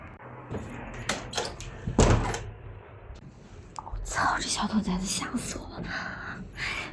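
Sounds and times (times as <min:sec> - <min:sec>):
door being shut with knocks, rattles and a heavy thud: 0:00.5 - 0:02.6
speech: 0:04.2 - 0:06.8.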